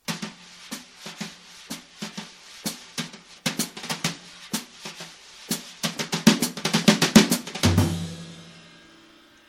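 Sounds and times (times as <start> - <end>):
drum brushes: 0.0 - 9.4
jazz music: 0.0 - 9.4.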